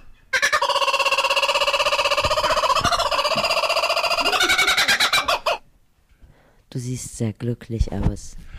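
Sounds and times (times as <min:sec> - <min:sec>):
laughing kookaburra call: 0:00.3 - 0:05.6
speech: 0:07.0 - 0:08.5.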